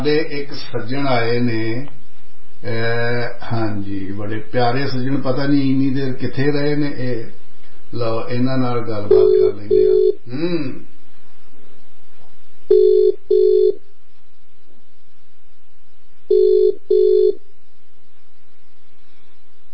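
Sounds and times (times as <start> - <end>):
speech: 0.0 - 2.0, 2.6 - 10.9, 12.7 - 13.8, 16.3 - 17.4
telephone ringing for a call to a listener: 9.1 - 10.2, 12.7 - 13.8, 16.3 - 17.4.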